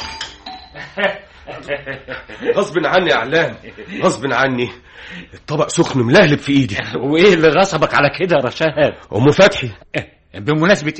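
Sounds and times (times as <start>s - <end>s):
doorbell ringing: 0.0s - 1.0s
laughter: 0.8s - 4.7s
speech: 1.0s - 10.9s.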